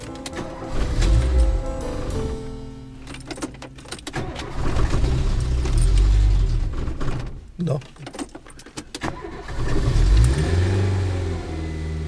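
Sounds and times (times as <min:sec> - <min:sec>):
30-year-old Renault R4 car engine starting and revving in Regensburg: 0:00.2 - 0:02.6, 0:03.5 - 0:07.2, 0:09.0 - 0:12.0
speech: 0:07.6 - 0:07.9.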